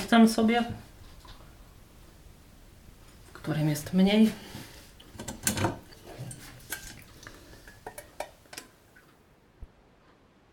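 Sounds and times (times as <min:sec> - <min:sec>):
speech: 0:00.1 - 0:00.9, 0:03.8 - 0:04.5
jelly dessert liquid pouring from a tilted pot into two dishes: 0:04.6 - 0:08.6.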